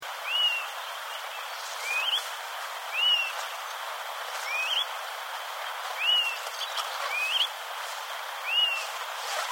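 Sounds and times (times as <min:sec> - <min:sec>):
broad hiss of background noise: 0:00.0 - 0:09.5
Myiarchus flycatcher whistled song: 0:00.2 - 0:00.7, 0:01.8 - 0:02.3, 0:02.9 - 0:03.4, 0:04.4 - 0:04.9, 0:06.0 - 0:07.5, 0:08.4 - 0:09.5.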